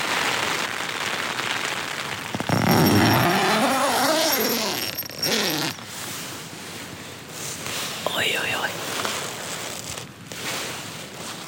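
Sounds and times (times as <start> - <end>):
rain showers pattering on tent fabric: 0.0 - 11.4
raspy tent zipper pulled open: 2.3 - 6.1, 8.9 - 11.4.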